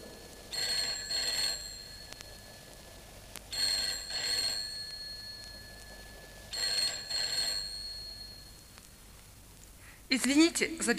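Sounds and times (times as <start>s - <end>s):
telephone ringing with trilling bursts in a family home: 0.5s - 8.8s
speech: 10.1s - 10.9s.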